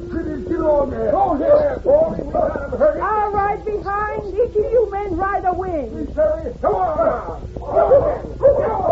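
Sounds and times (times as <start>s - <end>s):
speech: 0.6s - 8.8s
dogs whining: 6.6s - 8.9s
dogs barking and yipping: 7.7s - 8.9s.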